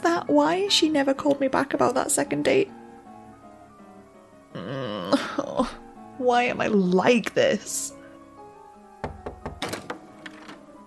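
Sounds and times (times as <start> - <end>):
speech: 0.3 - 2.8, 4.6 - 8.0
knocking on a door: 9.0 - 10.6.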